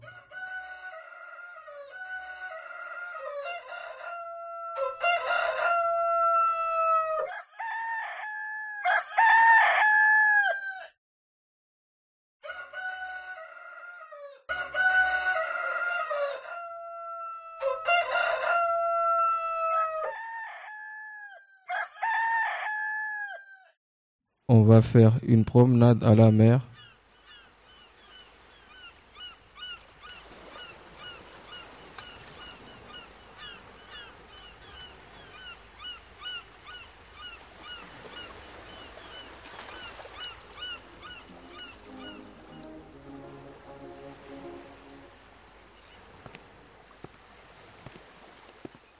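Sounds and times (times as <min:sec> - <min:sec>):
rooster crowing: 0:00.0 - 0:11.0, 0:12.4 - 0:23.8, 0:40.6 - 0:43.4
speech: 0:24.5 - 0:26.7.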